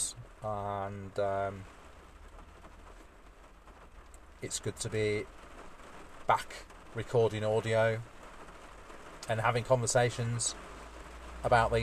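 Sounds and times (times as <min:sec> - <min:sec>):
heavy rain hammering down: 0:00.0 - 0:11.8
speech: 0:00.4 - 0:01.8, 0:04.4 - 0:05.4, 0:06.3 - 0:08.1, 0:09.3 - 0:10.6, 0:11.4 - 0:11.8.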